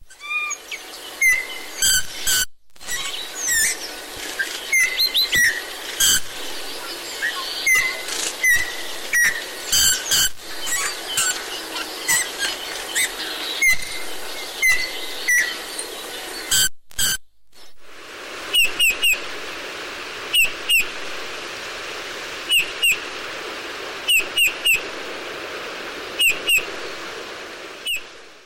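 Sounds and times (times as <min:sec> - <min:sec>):
steady hiss: 0:00.0 - 0:28.4
Eurasian bullfinch singing: 0:00.2 - 0:16.5.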